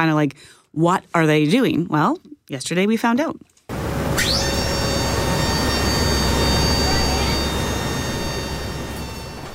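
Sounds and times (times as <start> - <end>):
speech: 0.0 - 3.5
turboprop engines of a search and rescue Hercules transport plane in flight: 3.8 - 9.5.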